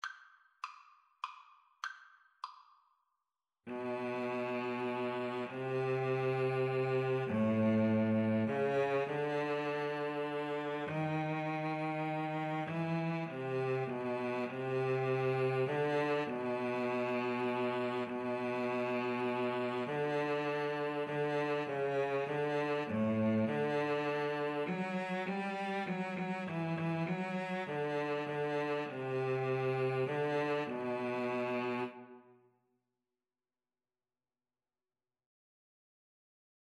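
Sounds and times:
violin and cello duet: 0:03.7 - 0:32.2.

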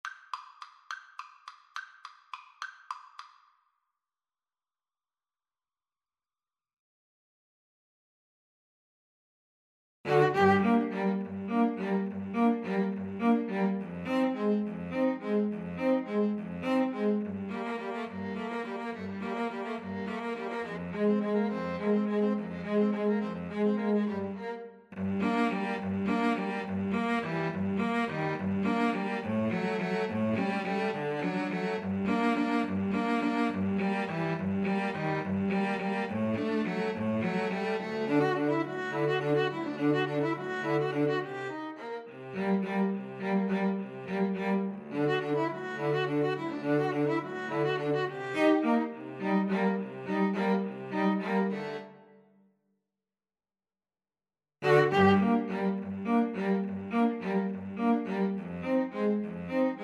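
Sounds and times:
two violins: 0:10.1 - 0:52.1, 0:54.6 - 0:59.8
cello: 0:10.1 - 0:52.3, 0:54.6 - 0:59.8.

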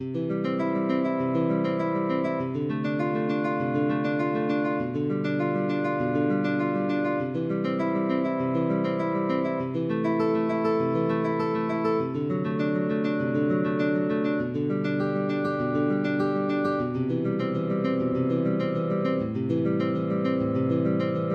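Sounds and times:
guitar playing a prelude: 0:00.0 - 0:21.3.

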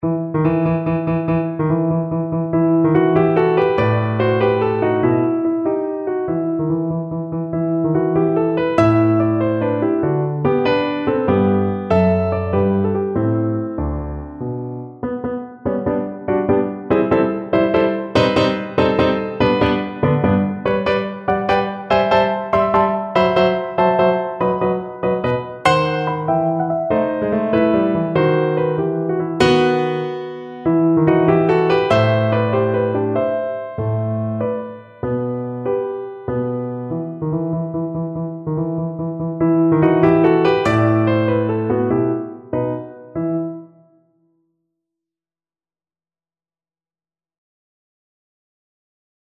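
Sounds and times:
piano serenade: 0:00.0 - 0:44.5.

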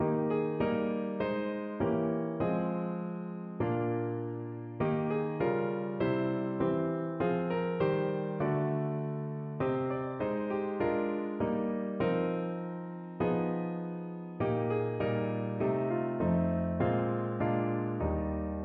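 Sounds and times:
piano: 0:00.0 - 0:18.6.

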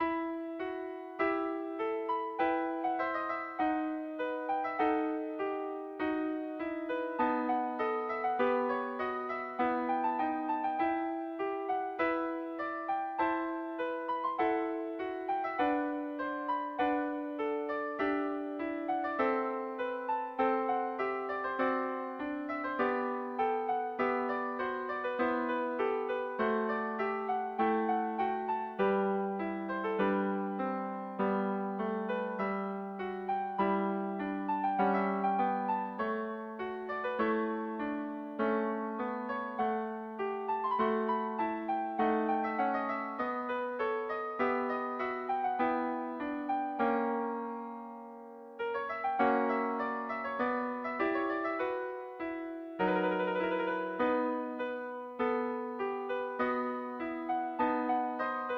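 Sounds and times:
concerto second movement played on piano: 0:00.0 - 0:58.5.

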